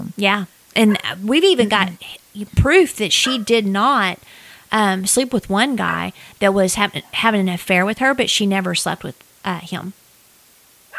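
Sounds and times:
faint steady hiss: 0.0 - 10.9
speech: 0.2 - 10.0
dog barking: 3.2 - 3.5.

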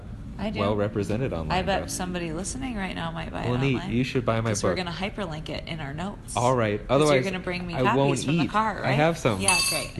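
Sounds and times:
speech: 0.4 - 9.9
spoon clinking against an empty ice cream bowl: 9.5 - 9.9.

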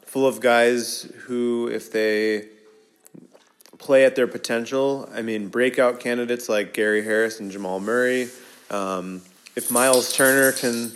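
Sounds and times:
speech: 0.1 - 2.6, 3.8 - 10.9
dog's collar jingling with light metallic clinks: 9.6 - 10.9.

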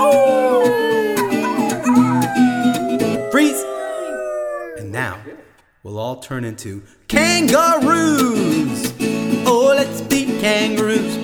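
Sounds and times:
voices imitating a dog howling in a sing-along: 0.0 - 5.6
speech: 5.8 - 11.2.

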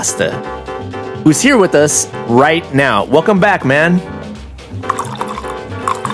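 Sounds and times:
speech: 0.0 - 4.1
music: 0.0 - 6.1
rum pouring into a glass: 4.8 - 6.1.

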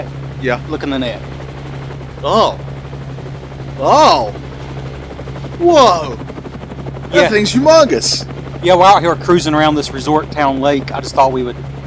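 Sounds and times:
speech: 0.0 - 1.3, 2.2 - 2.7, 3.8 - 4.4, 5.6 - 6.3, 7.1 - 11.7
helicopter flying overhead: 0.0 - 11.8
short voiced exclamation: 2.3 - 2.6, 3.8 - 4.4, 5.6 - 6.2, 7.1 - 8.2.

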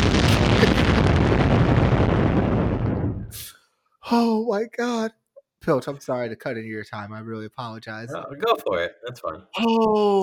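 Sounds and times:
bomb drop sound effect rumbling explosion: 0.0 - 3.4
speech: 4.1 - 10.2.

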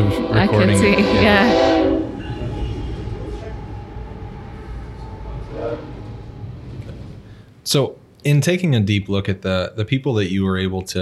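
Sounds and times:
train horn: 0.0 - 6.2
train rumbling past: 0.0 - 10.7
speech: 0.1 - 1.7, 7.7 - 11.0.

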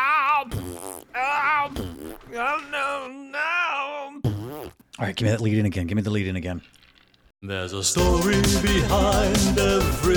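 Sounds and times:
fart noises: 0.4 - 2.6, 4.2 - 4.9
speech: 1.6 - 3.2, 5.0 - 6.8, 7.4 - 10.1.

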